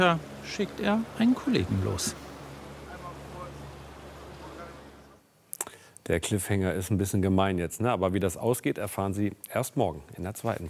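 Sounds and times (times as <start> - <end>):
speech: 0.0 - 2.2, 6.1 - 10.6
broad rush of water: 0.0 - 5.2
motorboat engine droning while driving across water: 0.0 - 5.2
wind: 0.0 - 10.6.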